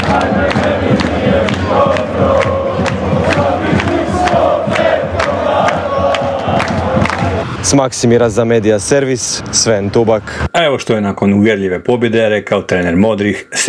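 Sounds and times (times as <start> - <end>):
football fans singing and chanting in a stadium: 0.0 - 7.6
speech: 0.2 - 0.6, 7.7 - 13.6.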